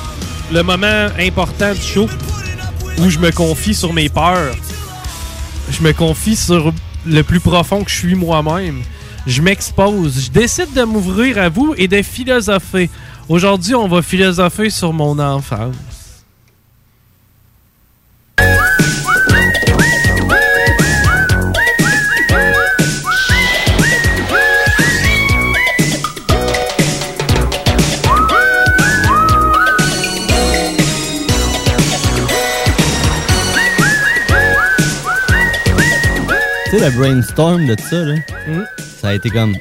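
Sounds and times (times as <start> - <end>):
speech: 0.5 - 2.4, 3.0 - 4.7, 5.7 - 15.9, 36.8 - 39.6
person whistling a tune: 18.4 - 26.0, 28.0 - 31.4, 32.7 - 39.6
busy instrumental backing with steady percussion and bass: 18.4 - 39.6.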